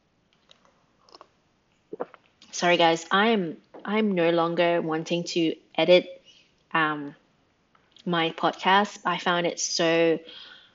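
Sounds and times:
sipping tea: 0.5 - 2.5
wet mouth and swallowing sounds: 1.0 - 2.4
speech: 2.6 - 7.2, 8.0 - 10.5.

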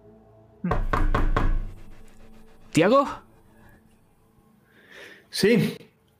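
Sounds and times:
speech: 0.6 - 1.0, 2.8 - 3.3, 5.3 - 5.8
firm knocking on a door: 0.7 - 3.3.

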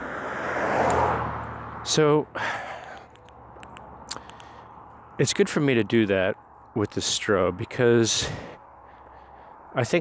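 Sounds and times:
car passing by outdoors: 0.0 - 2.0
speech: 1.8 - 2.6, 5.2 - 8.6, 9.7 - 9.9.

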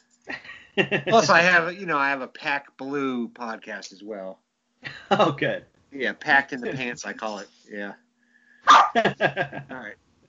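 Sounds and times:
laughter: 0.3 - 1.7, 4.9 - 5.6, 6.6 - 7.4, 8.9 - 9.9
speech: 0.8 - 8.0, 8.6 - 10.0
dog barking in sharp high-pitched yips: 8.7 - 9.1.

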